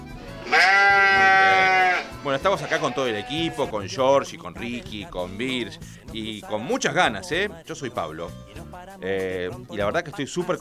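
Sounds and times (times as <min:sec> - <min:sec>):
sheep bleating in a cow-like moo: 0:00.2 - 0:05.7, 0:06.4 - 0:07.1
speech: 0:02.4 - 0:10.5.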